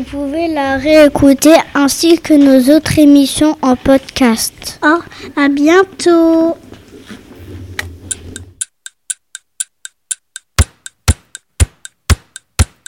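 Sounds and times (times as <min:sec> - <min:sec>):
speech: 0:00.0 - 0:06.7
clock ticking: 0:08.1 - 0:12.8.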